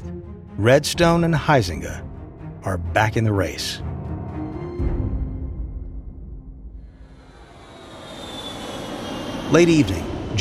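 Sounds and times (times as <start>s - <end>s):
speech: 0.6s - 3.9s, 9.5s - 10.3s
Hawker 700 executive jet engines droning in flight: 6.9s - 10.3s
bright rushing whine of Hawker 700 jet engines: 6.9s - 10.3s.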